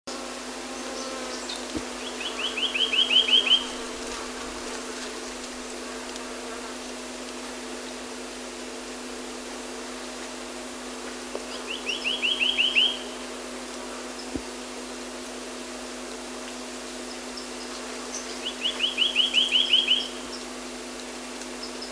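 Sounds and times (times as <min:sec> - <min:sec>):
Reunion cuckooshrike calling: 0:01.3 - 0:03.9, 0:11.5 - 0:13.2, 0:18.2 - 0:20.2.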